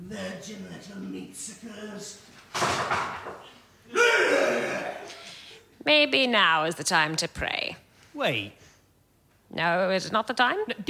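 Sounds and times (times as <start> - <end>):
speech: 0.1 - 5.2, 5.8 - 8.6, 9.5 - 10.8
small door slamming or being pounded: 2.5 - 3.4.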